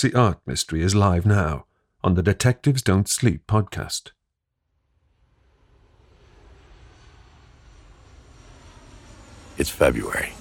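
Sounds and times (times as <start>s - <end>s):
speech: 0.0s - 4.2s, 9.6s - 10.3s
airplane engine roar heard from inside the cabin: 5.4s - 10.3s.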